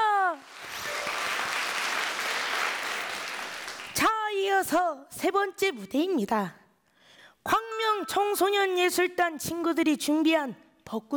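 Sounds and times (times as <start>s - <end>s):
audience applause after a gayageum performance: 0.0s - 4.1s
speech: 4.6s - 6.6s, 7.4s - 11.1s.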